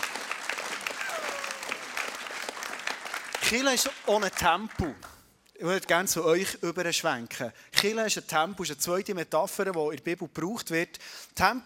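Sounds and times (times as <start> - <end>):
crowd applauding: 0.0 - 5.2
speech: 3.5 - 11.6.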